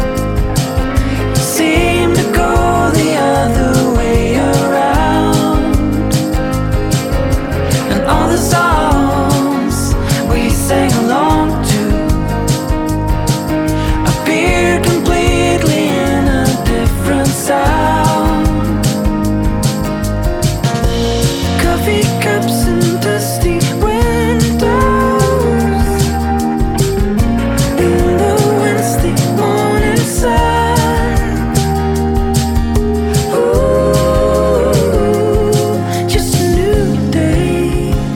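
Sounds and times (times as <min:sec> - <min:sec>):
person singing vocal line: 0:00.0 - 0:19.8, 0:21.2 - 0:38.1
band playing album title track: 0:00.0 - 0:38.1
dense guitars and bass: 0:00.0 - 0:38.1
driving drums: 0:00.0 - 0:38.1.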